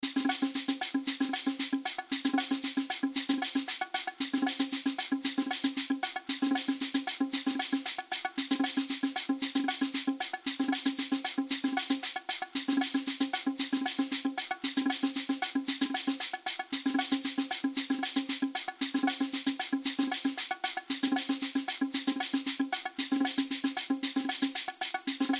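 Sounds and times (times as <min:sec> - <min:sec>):
fast percussion music: 0:00.0 - 0:25.3.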